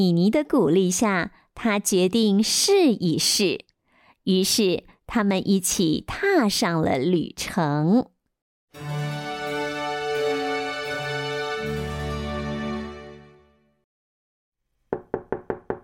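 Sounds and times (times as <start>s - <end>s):
speech: 0.0s - 8.1s
sustained ringing musical chord: 8.8s - 13.7s
quick sharp knocks on a door: 14.9s - 15.8s.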